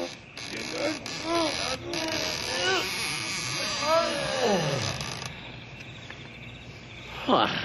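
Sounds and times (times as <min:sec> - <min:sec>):
hinges of big doors creaking and screeching as pulled open: 0:00.0 - 0:05.4.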